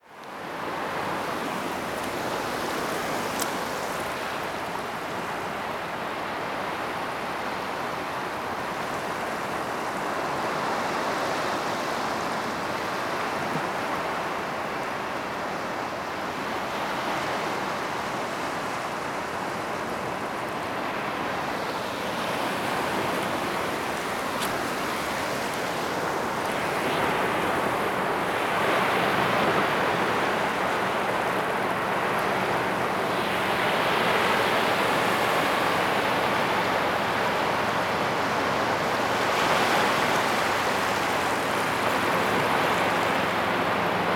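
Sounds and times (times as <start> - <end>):
water soundscape: 0.0 - 44.1.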